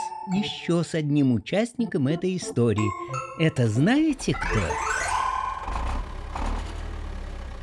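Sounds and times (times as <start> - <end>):
speech: 0.3 - 5.0
small truck engine rumbling and revving: 4.0 - 7.6.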